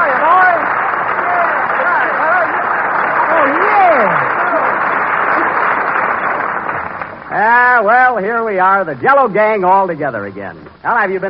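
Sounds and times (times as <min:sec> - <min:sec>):
studio audience applause: 0:00.0 - 0:08.2
speech: 0:08.1 - 0:11.2.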